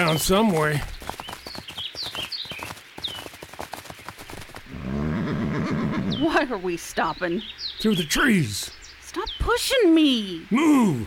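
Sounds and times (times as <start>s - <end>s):
speech: 0.0s - 1.2s, 6.4s - 8.8s, 9.5s - 11.0s
shot horse whinnying in distress: 4.7s - 6.2s.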